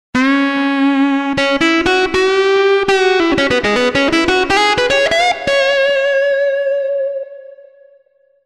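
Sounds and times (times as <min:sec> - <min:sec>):
pop guitar: 0:00.2 - 0:08.0.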